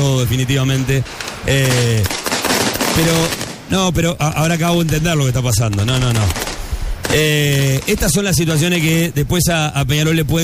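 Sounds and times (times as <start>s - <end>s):
speech: 0.0s - 2.2s, 3.0s - 6.5s, 7.1s - 10.4s
firework bombs thrown from football stadium stands exploding: 0.9s - 9.1s.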